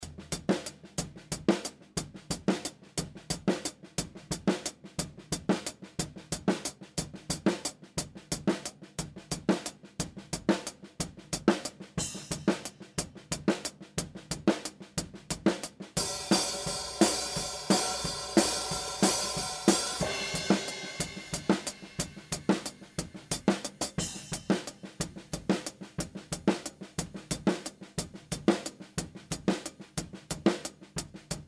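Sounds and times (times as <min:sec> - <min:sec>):
hi-hat: 0:00.0 - 0:31.4.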